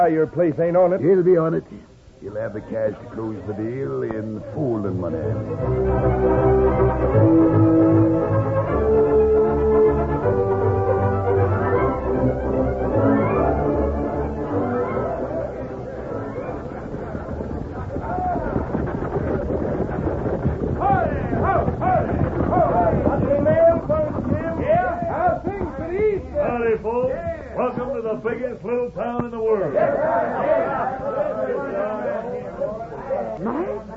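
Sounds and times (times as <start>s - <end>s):
speech: 0.0s - 9.0s, 26.5s - 32.1s
murmur of crowd voices: 0.0s - 33.9s
stagecoach hooves and wheels clattering: 16.4s - 28.1s.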